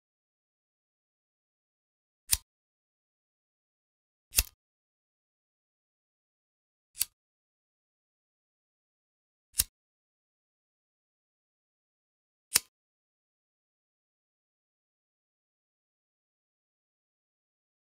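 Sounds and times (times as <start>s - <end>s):
lighter: 4.3s - 4.6s, 7.0s - 7.2s.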